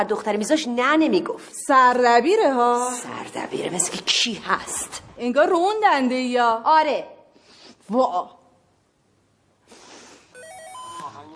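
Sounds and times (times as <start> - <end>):
speech: 0.0 - 7.1, 7.9 - 8.4
timer alarm ringing with bright electronic tones: 10.3 - 11.3.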